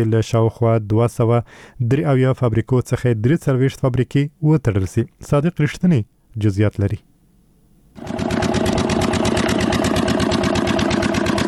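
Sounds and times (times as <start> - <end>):
speech: 0.0 - 7.1
diesel generator running to power a pipe-making factory: 8.0 - 11.4
fast mechanical clatter: 8.0 - 11.4.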